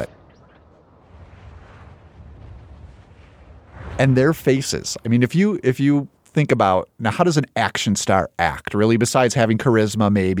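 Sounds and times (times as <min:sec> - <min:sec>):
steady broad rush of wind with low rumbling gusts: 0:00.0 - 0:05.7
speech: 0:04.0 - 0:10.3.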